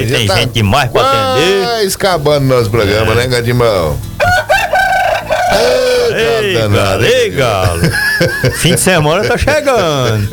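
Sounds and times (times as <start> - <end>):
speech: 0.1 - 4.1, 5.5 - 10.3
rooster crowing: 4.2 - 6.4
laughter: 5.5 - 10.3.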